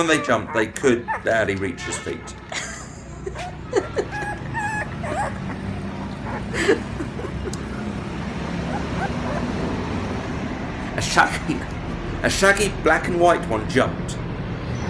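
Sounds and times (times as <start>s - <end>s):
speech: 0.0s - 2.5s, 6.5s - 7.0s, 11.0s - 14.2s
laughter: 0.0s - 10.1s, 11.0s - 13.8s
small puppies growling and yipping: 0.0s - 11.0s.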